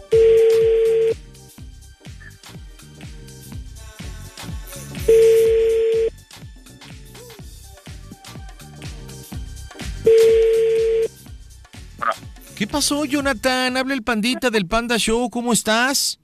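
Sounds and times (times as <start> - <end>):
busy rhythmic background: 0.0 - 13.6
telephone tones from a number being dialed on a private line: 0.2 - 1.2, 10.2 - 11.1
speech: 12.7 - 16.2.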